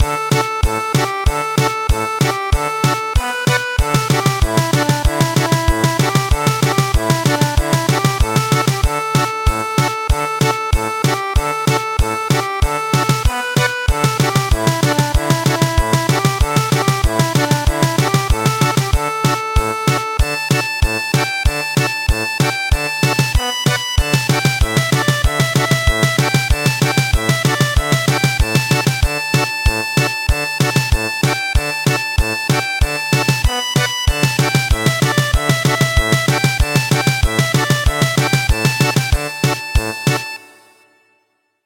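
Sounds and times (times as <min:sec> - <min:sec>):
Japanese processional tune German polka: 0:00.0 - 0:41.2.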